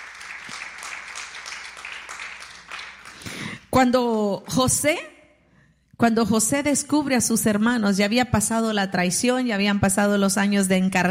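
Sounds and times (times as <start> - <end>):
audience clapping hands: 0.0 - 3.6
speech: 3.8 - 5.1, 6.0 - 11.0.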